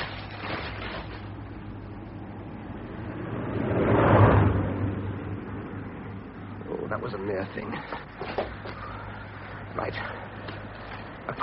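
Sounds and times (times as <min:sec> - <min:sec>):
steady low hum: 0:00.0 - 0:11.4
patrol car driving past on a road at the edge of a forest: 0:02.6 - 0:06.5
speech: 0:07.1 - 0:08.6, 0:09.8 - 0:10.2.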